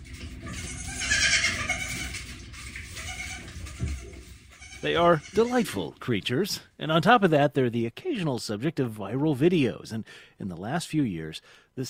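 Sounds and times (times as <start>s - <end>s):
several goats bleating: 0.5s - 2.2s, 2.9s - 5.7s
speech: 4.8s - 11.8s.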